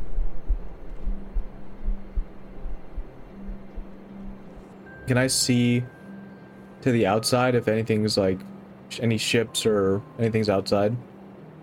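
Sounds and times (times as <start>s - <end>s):
low heartbeat: 0.0s - 4.6s
soft droning hum: 0.0s - 11.6s
speech: 5.1s - 6.0s, 6.8s - 11.1s.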